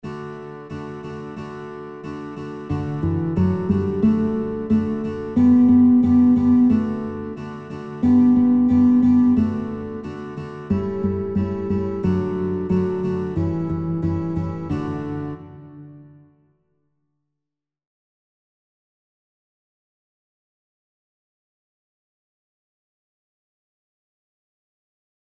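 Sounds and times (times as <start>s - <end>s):
guitar melody: 0.0s - 16.5s.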